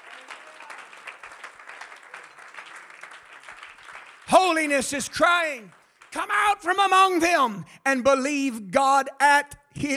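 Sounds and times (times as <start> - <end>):
church congregation clapping hands during a service: 0.0 - 7.5
speech: 4.4 - 9.9.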